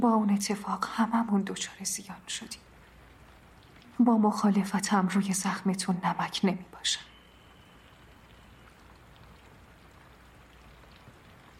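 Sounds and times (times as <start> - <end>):
speech: 0.0 - 2.7, 4.0 - 7.1
steady rain pattering on foliage: 0.0 - 11.5.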